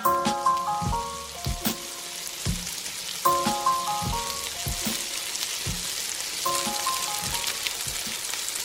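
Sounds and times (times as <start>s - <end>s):
bright repeating melodic tones: 0.0s - 2.3s, 3.2s - 5.2s, 6.4s - 7.6s
food sizzling in a hot frying pan: 0.0s - 8.6s.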